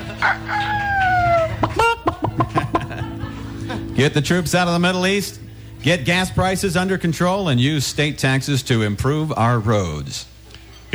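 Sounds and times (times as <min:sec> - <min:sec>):
rooster crowing: 0:00.0 - 0:03.1
laughter: 0:00.0 - 0:04.8
speech: 0:00.2 - 0:00.9, 0:04.0 - 0:10.3
hen clucking: 0:00.2 - 0:03.5.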